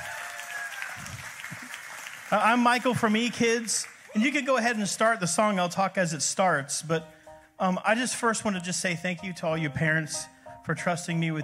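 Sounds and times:
audience applauding: 0.0 - 4.9
speech: 2.3 - 11.4.

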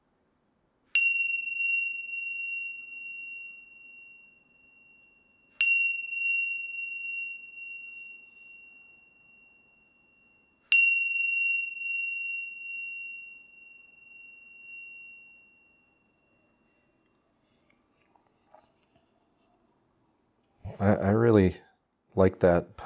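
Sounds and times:
meditation bell ringing: 0.9 - 17.9
speech: 20.8 - 21.6, 22.2 - 22.8.

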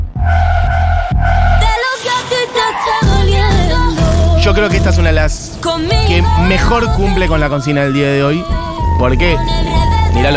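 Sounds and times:
song built from engine revving samples: 0.0 - 10.3
speech: 4.6 - 10.3.

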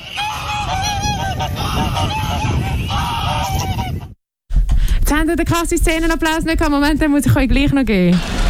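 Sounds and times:
goose honking: 0.0 - 4.1
speech: 5.2 - 8.4.

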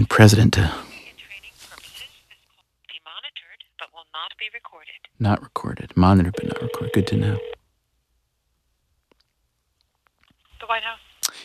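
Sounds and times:
speech: 0.0 - 0.8, 4.4 - 7.6, 10.7 - 11.0
telephone keypad tones dialing a number: 6.3 - 7.6.

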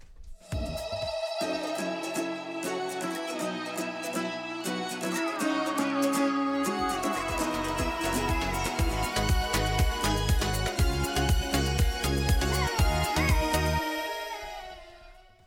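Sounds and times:
steady driving beat: 0.4 - 1.4, 5.0 - 13.8
pop song by a sister duo: 0.4 - 15.4
bright synth chords: 1.2 - 14.2.

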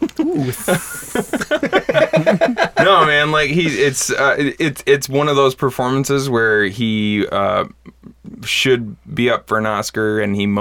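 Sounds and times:
laughter: 0.0 - 4.0
speech: 0.0 - 7.8, 8.4 - 10.5
person imitating a snake with a sharp hiss: 0.4 - 1.6.

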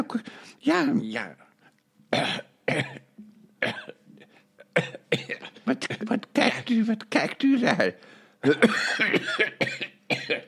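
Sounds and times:
speech: 0.0 - 1.4, 4.8 - 10.4
harsh raspy coughing: 2.1 - 6.2, 8.4 - 10.4.

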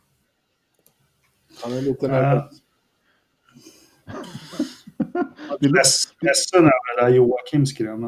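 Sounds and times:
speech: 1.6 - 2.6, 5.6 - 8.0
person with pollen allergy sniffling: 3.6 - 5.6
laughter: 4.1 - 6.2.

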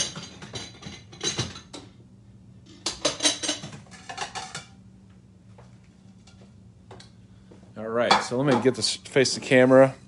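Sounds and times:
crockery dishes clattering as a plate is fetched: 0.0 - 1.9, 2.8 - 4.8, 8.1 - 8.8
speech: 7.8 - 10.0.

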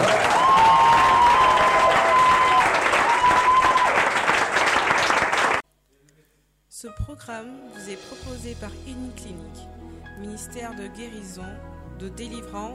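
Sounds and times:
crowd applauding and cheering at a Christian healing and deliverance service: 0.0 - 5.6
speech: 7.4 - 12.7.

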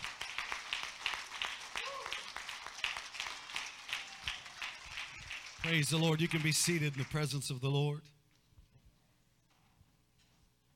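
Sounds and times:
crowd applauding: 0.0 - 7.8
speech: 5.7 - 8.1.

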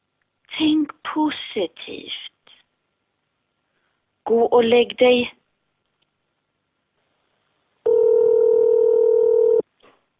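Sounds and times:
speech: 0.6 - 2.3, 4.3 - 5.4
telephone dial tone: 7.9 - 9.6.

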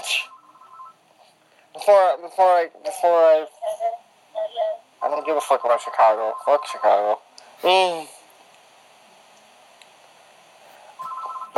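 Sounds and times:
phone chirping short electronic beeps: 0.0 - 1.0, 5.1 - 7.2, 11.0 - 11.5
speech: 1.9 - 8.2.

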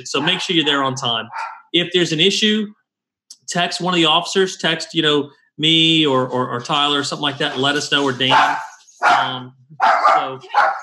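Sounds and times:
dog barking: 0.0 - 1.7, 8.3 - 10.8
speech: 0.0 - 2.8, 3.5 - 10.8.

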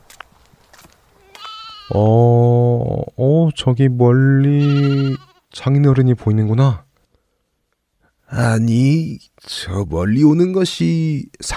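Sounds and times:
young goat bleating: 1.2 - 2.0, 4.4 - 5.5
speech: 1.9 - 2.3, 3.2 - 6.8, 8.3 - 11.5.

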